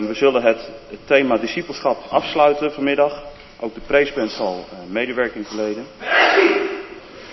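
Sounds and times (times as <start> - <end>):
speech: 0.0 - 6.5
sneeze in a roomy space: 6.0 - 7.0.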